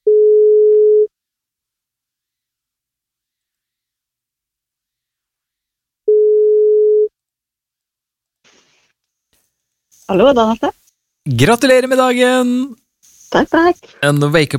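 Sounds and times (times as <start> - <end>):
telephone ringing tone beeps while calling: 0.0 - 1.1, 6.1 - 7.1
speech: 10.1 - 14.5.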